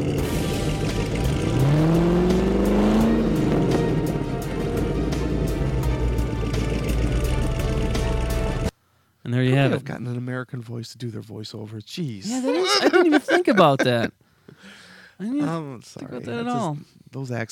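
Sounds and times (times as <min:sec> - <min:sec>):
2012 Camaro ZL1 muscle car engine revving then idling: 0:00.0 - 0:08.7
speech: 0:09.6 - 0:14.2, 0:15.2 - 0:17.5
laughter: 0:12.2 - 0:14.1.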